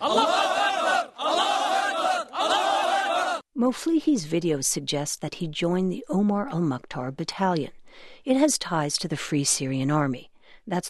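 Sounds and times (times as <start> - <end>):
group of armed fighters cheering and chanting in unison: 0.0 - 3.5
speech: 3.7 - 10.8.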